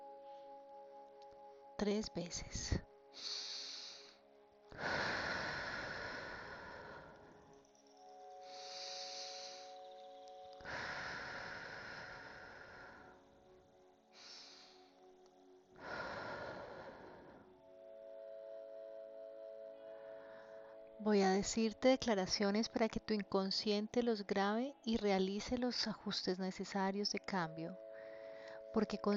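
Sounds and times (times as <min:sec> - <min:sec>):
soft steady musical tones humming: 0:00.0 - 0:29.1
speech: 0:01.8 - 0:03.6, 0:21.4 - 0:27.8, 0:28.7 - 0:29.1
slow deep inhaling and exhaling: 0:03.2 - 0:07.8, 0:08.4 - 0:09.9, 0:10.6 - 0:15.1, 0:15.8 - 0:18.8, 0:19.8 - 0:21.0, 0:27.8 - 0:28.7.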